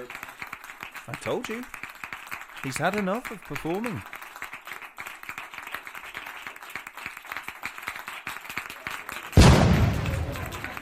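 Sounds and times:
steady rhythmic clapping: 0:00.0 - 0:10.8
speech: 0:01.1 - 0:01.8, 0:02.6 - 0:04.2
loud cannon blast with long decaying roar: 0:09.4 - 0:10.8.

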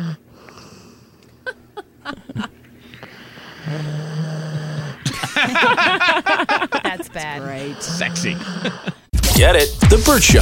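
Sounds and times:
female dog snoring loudly with raspy wheezing breaths: 0:00.0 - 0:01.0, 0:03.4 - 0:05.1, 0:07.4 - 0:09.1
laughter: 0:01.4 - 0:02.6, 0:05.0 - 0:09.1
female dog snorting: 0:03.2 - 0:05.1, 0:07.3 - 0:09.1
speech: 0:07.1 - 0:10.4.

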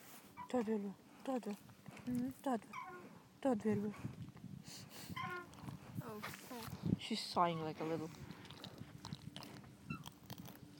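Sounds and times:
speech: 0:00.5 - 0:05.4, 0:06.0 - 0:08.3
dog chewing on a treat: 0:05.3 - 0:06.0, 0:08.0 - 0:10.7.

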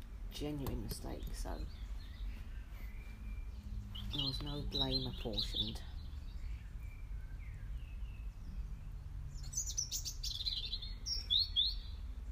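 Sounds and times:
bird chirping outdoors: 0:00.0 - 0:12.2
speech: 0:00.4 - 0:01.9, 0:04.1 - 0:05.9.

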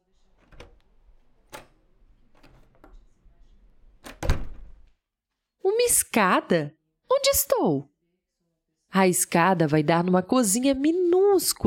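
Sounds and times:
door being pushed open: 0:00.4 - 0:00.8, 0:04.0 - 0:04.9
door handle turning: 0:00.4 - 0:00.8, 0:01.4 - 0:03.0, 0:04.0 - 0:04.8
loud door thud: 0:04.0 - 0:04.9
speech: 0:05.8 - 0:07.9, 0:08.9 - 0:11.6.

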